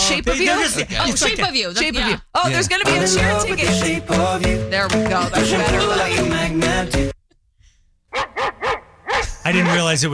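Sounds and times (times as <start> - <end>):
speech: 0.1 - 7.2, 9.5 - 10.1
dog barking loudly: 8.1 - 10.0.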